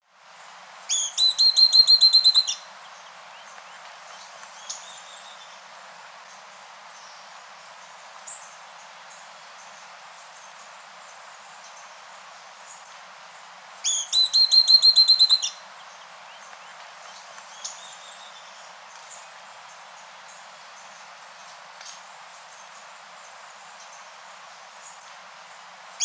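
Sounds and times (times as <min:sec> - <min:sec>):
birdsong of cloud forest birds in Costa Rica: 0:00.9 - 0:26.0.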